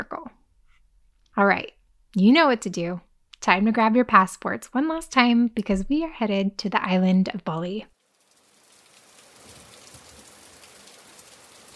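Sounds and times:
speech: 0:01.4 - 0:07.9
torrential heavy rain pouring down on surfaces: 0:08.0 - 0:11.7.

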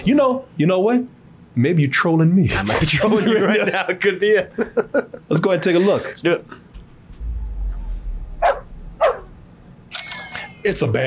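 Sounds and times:
speech: 0:00.0 - 0:06.6, 0:10.6 - 0:11.0
laughter: 0:03.0 - 0:05.4
low rumbling hum: 0:06.7 - 0:09.7
dog barking: 0:08.4 - 0:09.3.

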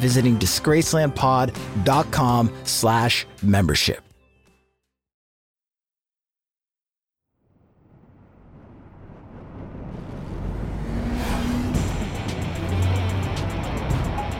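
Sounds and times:
speech: 0:00.0 - 0:04.1
road noise: 0:07.8 - 0:14.3
1975 Corvette Stingray driving fast along the Pacific Coast Highway: 0:08.9 - 0:14.3.

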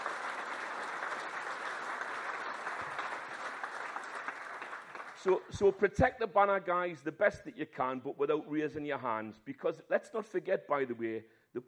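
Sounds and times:
audience applause: 0:00.0 - 0:05.8
speech: 0:05.2 - 0:11.6.

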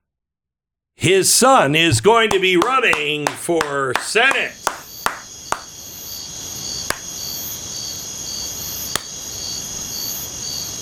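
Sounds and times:
speech: 0:01.0 - 0:04.7
sharp isolated hand claps: 0:02.3 - 0:05.7
loud cricket chirping: 0:02.4 - 0:10.8.

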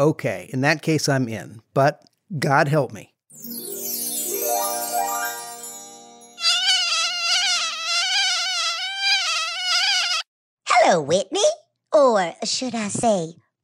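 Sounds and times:
speech: 0:00.0 - 0:03.6, 0:10.9 - 0:13.6
mosquito buzzing: 0:06.4 - 0:10.3.

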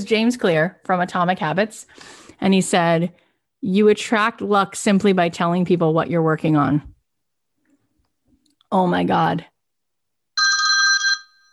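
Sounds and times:
speech: 0:00.0 - 0:06.9, 0:08.7 - 0:09.5
telephone ringing with a bright trilling electronic bell: 0:10.4 - 0:11.5.

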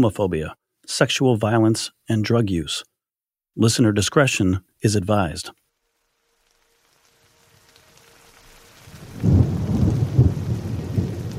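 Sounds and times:
speech: 0:00.0 - 0:02.9, 0:03.6 - 0:05.6
light drizzling rain on a mountain: 0:05.2 - 0:11.3.

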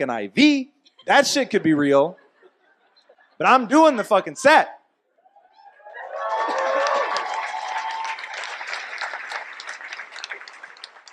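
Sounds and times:
speech: 0:00.0 - 0:02.2, 0:03.4 - 0:04.8
crowd cheering and whoops: 0:05.2 - 0:08.6
audience applause: 0:05.8 - 0:11.1.

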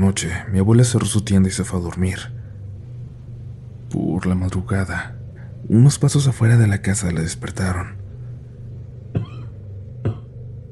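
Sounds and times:
low steady hum: 0:00.0 - 0:10.7
speech: 0:00.1 - 0:02.4, 0:03.9 - 0:08.0
man coughing: 0:09.1 - 0:10.3.

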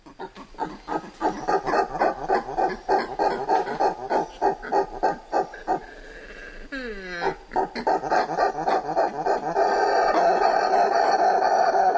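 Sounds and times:
woolly spider monkey harsh barking calls: 0:00.0 - 0:06.0, 0:07.2 - 0:11.9.

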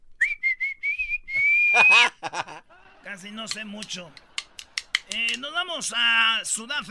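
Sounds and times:
person whistling: 0:00.2 - 0:02.1
laughter: 0:01.7 - 0:05.2
speech: 0:03.1 - 0:04.3, 0:05.1 - 0:06.8.

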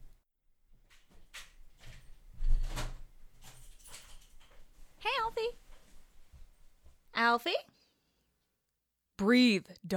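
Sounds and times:
front door thud and scrape: 0:01.4 - 0:03.1
speech: 0:07.3 - 0:07.7, 0:09.2 - 0:09.9.

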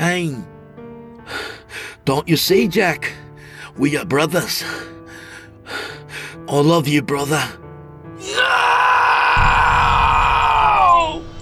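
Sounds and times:
speech: 0:00.0 - 0:00.5, 0:02.1 - 0:03.2, 0:03.8 - 0:05.0, 0:06.5 - 0:07.6
loud shrill scream: 0:08.2 - 0:11.4.

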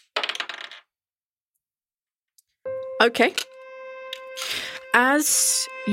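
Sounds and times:
large dice rolling on a tabletop: 0:00.0 - 0:00.9
speech: 0:03.0 - 0:03.6, 0:04.4 - 0:05.9.

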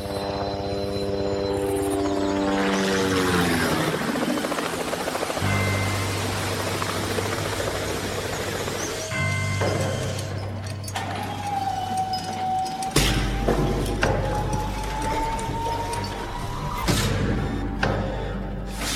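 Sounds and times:
helicopter flying over a river and landing at a nuclear power plant: 0:00.0 - 0:18.9.

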